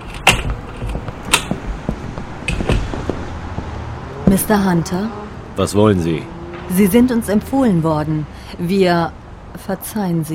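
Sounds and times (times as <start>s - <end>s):
door latch rattling: 0.0s - 3.3s
wooden door opening: 0.0s - 3.8s
speech: 4.3s - 10.3s.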